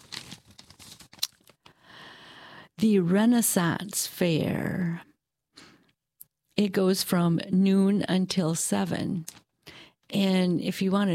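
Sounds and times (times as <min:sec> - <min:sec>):
sheet of paper rustling and crinkling: 0:00.0 - 0:01.6
speech: 0:02.8 - 0:05.1, 0:06.6 - 0:09.4, 0:10.1 - 0:11.1.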